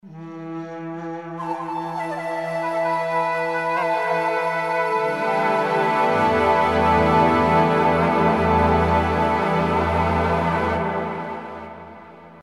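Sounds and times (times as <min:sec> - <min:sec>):
ethno synth music on a Roland JV2080: 0:00.1 - 0:12.4.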